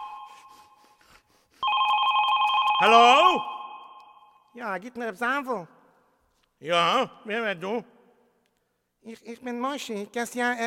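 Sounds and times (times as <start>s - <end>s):
telephone ringing with a trilling electronic tone: 0.0s - 0.7s, 1.6s - 4.4s
speech: 2.8s - 3.5s, 4.6s - 5.8s, 6.6s - 8.0s, 9.0s - 10.6s.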